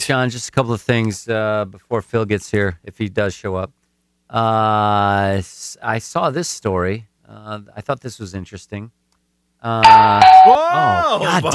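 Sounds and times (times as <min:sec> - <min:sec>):
speech: 0:00.0 - 0:09.0, 0:09.6 - 0:11.5
electronic doorbell chiming with distorted off-key melody: 0:09.8 - 0:10.7.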